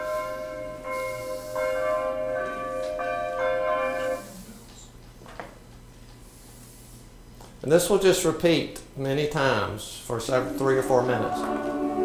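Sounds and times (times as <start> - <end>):
church bells ringing in an overlapping peal: 0.0 - 4.2, 10.3 - 12.0
speech: 7.6 - 11.8.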